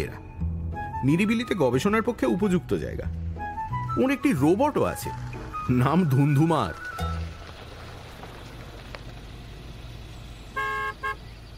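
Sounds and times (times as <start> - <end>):
speech: 1.0 - 3.2, 4.0 - 7.1
car horn honking at an automatic gate in a secluded wooded area: 10.6 - 11.3.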